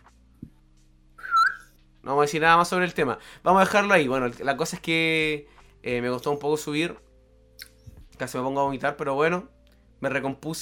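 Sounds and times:
quiet hum: 0:00.0 - 0:10.6
short human whistle: 0:01.2 - 0:01.6
speech: 0:02.1 - 0:07.1, 0:08.2 - 0:10.6.

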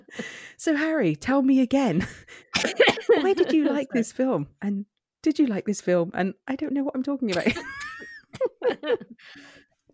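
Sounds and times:
speech: 0:00.1 - 0:07.8, 0:08.4 - 0:09.9
harsh coughs: 0:02.5 - 0:03.4
laughter: 0:02.6 - 0:04.0, 0:07.4 - 0:09.2
raspy wheezing breath: 0:09.2 - 0:09.8.

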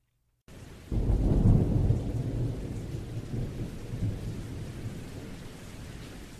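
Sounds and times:
steady rain pattering in a summer thunderstorm: 0:00.5 - 0:06.3
deep roll of thunder in a summer thunderstorm: 0:00.8 - 0:05.7.

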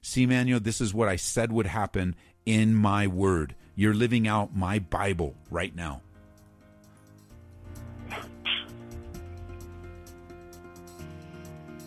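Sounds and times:
speech: 0:00.0 - 0:06.0
music: 0:00.1 - 0:11.8
sneeze: 0:08.1 - 0:08.8.

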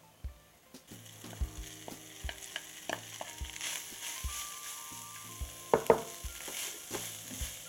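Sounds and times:
meatless crumbles with oregano and spices sizzling in hot oil in a pan: 0:00.1 - 0:07.6
utensil stirring meatless crumbles around a pan: 0:02.2 - 0:07.6.

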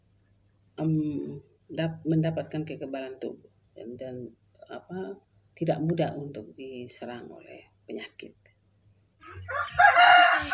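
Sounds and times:
speech: 0:00.8 - 0:08.4
KUB chicken rooster crowing in a clean dry coop: 0:09.2 - 0:10.5.

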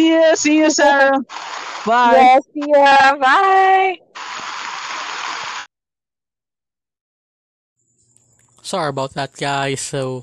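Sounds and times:
speech: 0:00.0 - 0:04.0, 0:08.7 - 0:10.2
heavy rain pouring down: 0:01.0 - 0:02.4, 0:04.2 - 0:05.7.

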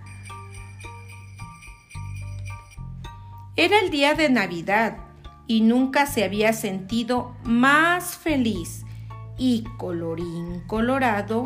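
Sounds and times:
bells ringing outdoors in daytime on Christmas Day: 0:00.0 - 0:03.2
speech: 0:03.6 - 0:08.8, 0:09.4 - 0:11.4.

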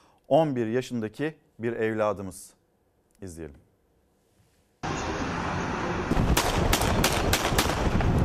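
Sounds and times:
steady noise: 0:00.0 - 0:08.2
speech: 0:00.3 - 0:02.6, 0:03.2 - 0:03.6
gunshots fired by a motorcyclist at a service vehicle in Istanbul: 0:06.1 - 0:08.2.

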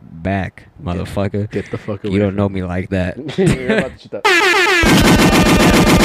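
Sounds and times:
speech: 0:00.2 - 0:06.0
brief falling horn-like tone from a soundboard: 0:04.3 - 0:06.0
automatic gunfire sound effect from a soundboard: 0:04.4 - 0:06.0.

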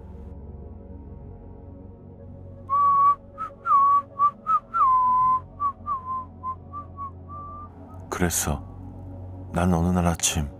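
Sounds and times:
person whistling a short clear tune: 0:02.7 - 0:07.7
speech: 0:08.2 - 0:08.7, 0:09.5 - 0:10.5.

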